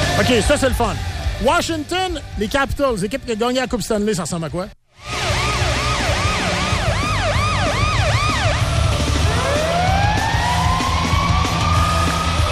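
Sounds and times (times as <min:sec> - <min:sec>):
speech: 0:00.2 - 0:05.1
police sirens blaring as hockey goal celebration: 0:05.0 - 0:12.4.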